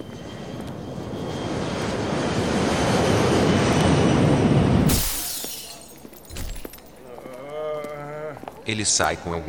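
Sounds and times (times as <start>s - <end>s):
airplane engine roar: 0.0s - 4.8s
thud: 4.9s - 7.0s
speech: 8.7s - 9.4s.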